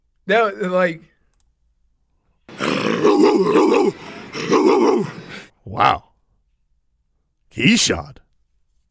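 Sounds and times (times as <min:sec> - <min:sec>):
speech: 0:00.3 - 0:01.1, 0:03.4 - 0:06.1, 0:07.5 - 0:08.2
person imitating a dog's growl: 0:02.5 - 0:05.5.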